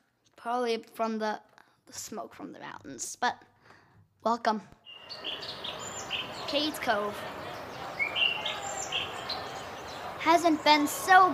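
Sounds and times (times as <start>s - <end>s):
speech: 0.4s - 3.5s, 4.2s - 5.7s, 6.5s - 7.4s, 10.2s - 11.3s
bird chirping in the mountains: 4.8s - 11.1s.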